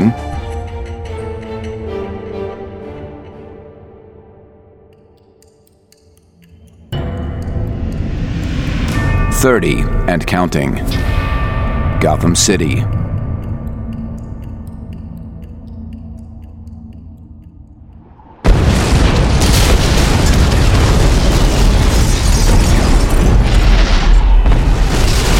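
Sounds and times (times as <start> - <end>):
quiet ticking hum: 4.9 - 18.9
speech: 9.4 - 11.2, 12.0 - 13.0
loud explosion: 18.4 - 25.3
roaring rumble of debris and fire: 18.4 - 25.3.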